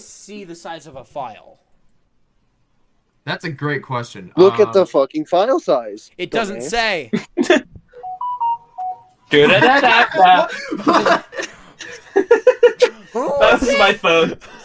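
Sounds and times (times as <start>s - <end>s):
speech: 0.0s - 1.7s, 3.2s - 7.7s, 9.3s - 12.5s, 13.1s - 14.6s
phone ringtone of simple beeping notes: 8.0s - 9.3s
people laughing: 9.3s - 14.6s.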